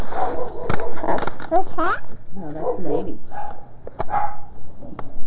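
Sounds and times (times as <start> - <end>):
dog barking and yelping as a ball is thrown for it: 0.1 - 1.2, 2.5 - 4.5.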